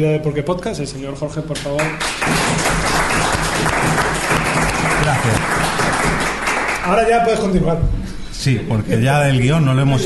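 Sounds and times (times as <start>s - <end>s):
speech: 0.0s - 4.1s, 5.0s - 5.8s, 6.9s - 10.0s
audience applause: 1.8s - 7.0s.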